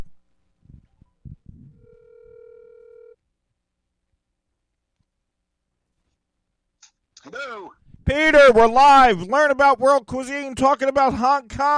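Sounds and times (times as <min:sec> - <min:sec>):
steady buzzing telephone ringback tone on an outgoing call: 0:01.8 - 0:03.2
speech: 0:07.2 - 0:11.7.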